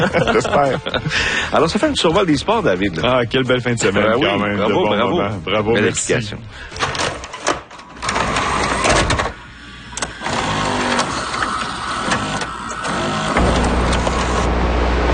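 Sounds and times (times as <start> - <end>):
laughter: 0.0 - 1.5
speech: 0.0 - 7.1
old VHS video cassette player whirring: 6.8 - 15.1
low hum of VHS video cassette player: 12.9 - 15.1.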